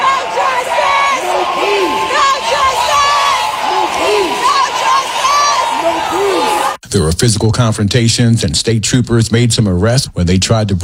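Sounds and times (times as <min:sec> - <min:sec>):
large crowd of protesters shouting chant-like calls in a state house: 0:00.0 - 0:06.8
speech: 0:07.0 - 0:10.8.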